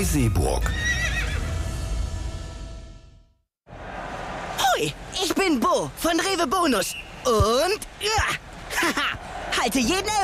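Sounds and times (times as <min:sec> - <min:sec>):
speech: 0:00.0 - 0:00.8, 0:04.8 - 0:10.2
horse whinnying: 0:00.6 - 0:01.5.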